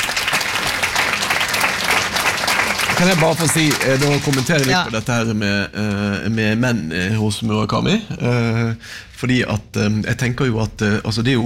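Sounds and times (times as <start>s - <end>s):
dense audience applause at a discussion of a novelist's work: 0.0s - 5.1s
speech: 3.0s - 11.4s.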